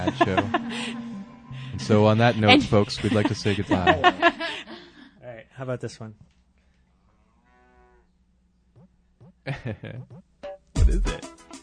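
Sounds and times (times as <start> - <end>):
laughter: 0.0 - 1.1, 1.7 - 5.1, 9.5 - 10.0
speech: 0.0 - 1.1, 1.8 - 4.4, 5.6 - 6.3, 9.5 - 10.3, 10.9 - 11.4
cow mooing and bellowing: 7.4 - 8.1.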